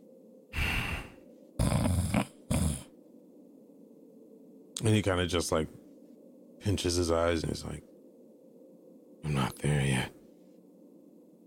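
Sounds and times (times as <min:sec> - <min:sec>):
person snoring: 0:00.6 - 0:02.9
speech: 0:04.8 - 0:05.8, 0:06.6 - 0:07.9, 0:09.2 - 0:10.2.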